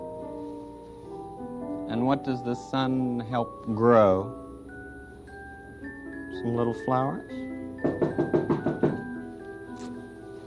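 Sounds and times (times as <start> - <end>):
speech: 1.9 - 4.4, 6.4 - 8.0
firm knocking on a door: 7.8 - 9.2.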